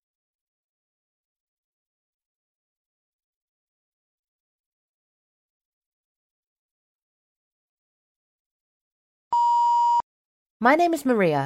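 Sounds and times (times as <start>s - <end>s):
steady electronic beep signalling a listening-test recording start: 9.4s - 10.0s
speech: 10.6s - 11.4s.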